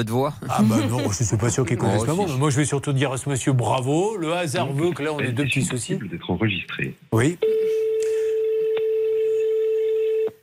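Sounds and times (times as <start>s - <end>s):
speech: 0.0s - 7.8s
laughter: 0.5s - 2.3s
telephone ringback tone during outgoing call: 7.4s - 10.4s.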